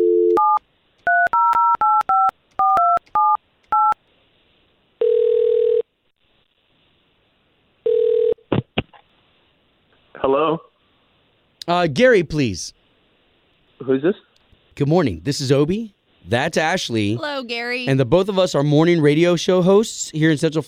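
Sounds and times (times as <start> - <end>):
long ringing tones on the telephone line: 0.0 - 4.0, 5.0 - 5.8, 7.8 - 8.4
speech: 10.3 - 10.6, 11.7 - 12.8, 13.8 - 20.6.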